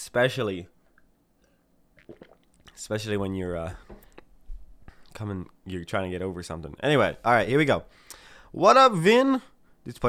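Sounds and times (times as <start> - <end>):
speech: 0.1 - 0.8, 2.1 - 4.0, 5.2 - 10.0
person gulping and swallowing water: 2.0 - 2.8.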